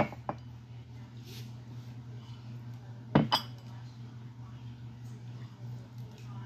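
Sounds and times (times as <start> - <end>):
low hum: 0.0 - 6.4
glasses clinking during whiskey pouring at a tasting: 3.2 - 3.7.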